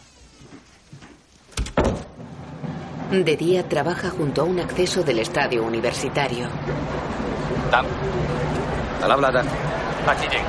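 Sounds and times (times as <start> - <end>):
door closing with thuds: 1.5 - 2.3
speech: 3.1 - 10.4.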